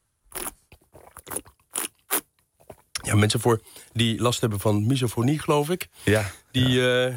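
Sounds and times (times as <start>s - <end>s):
person slurping a first sip of coffee while tasting it: 0.3s - 2.3s
speech: 3.1s - 7.1s.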